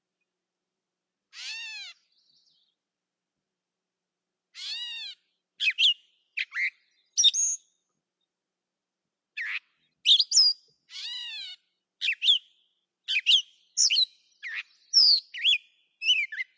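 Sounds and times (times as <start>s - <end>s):
catbird song: 1.3s - 2.9s, 4.5s - 8.4s, 9.3s - 16.5s.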